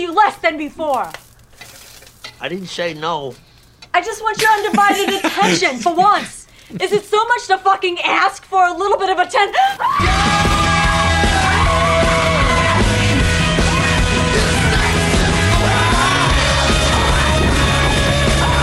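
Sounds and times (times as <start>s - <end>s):
speech: 0.0s - 1.2s, 2.4s - 10.5s
laughter: 4.4s - 7.0s
woman screaming while on fire: 9.5s - 12.8s
dense roaring wall of sound, possibly flames: 10.0s - 18.6s.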